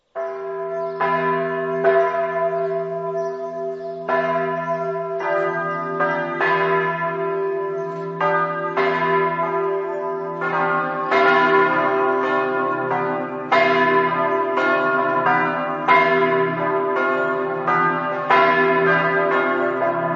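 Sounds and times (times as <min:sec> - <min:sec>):
bells in Valvasone: 0:00.2 - 0:20.1.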